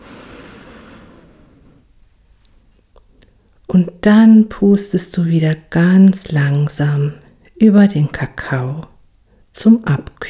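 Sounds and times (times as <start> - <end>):
deep slow inhale through the nose while smelling cocoa: 0.0 - 1.9
speech: 3.8 - 8.9, 9.6 - 10.2.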